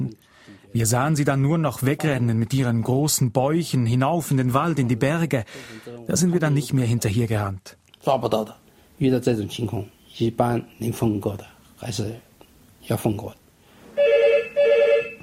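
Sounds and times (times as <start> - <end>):
speech: 0.7 - 13.4
electronic telephone ringing: 14.0 - 15.2.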